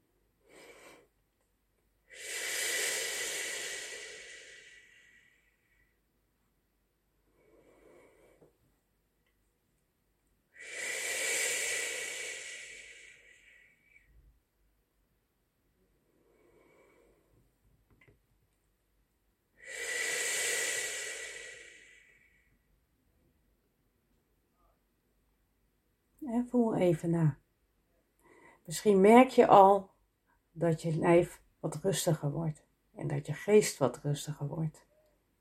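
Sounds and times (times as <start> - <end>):
audible breathing in and out without voicing: 0.0 - 1.2, 2.0 - 6.1, 7.2 - 8.7, 10.5 - 14.3, 16.0 - 17.5, 19.6 - 22.8
speech: 26.3 - 27.4, 28.7 - 29.9, 30.6 - 34.9.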